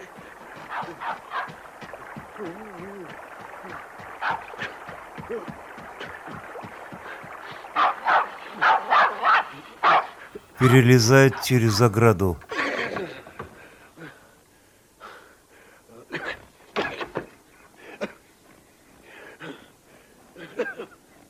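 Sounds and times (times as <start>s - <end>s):
dog barking and yipping: 0.7s - 1.6s, 4.2s - 4.5s, 7.8s - 10.1s
speech: 2.4s - 3.8s, 10.6s - 12.5s.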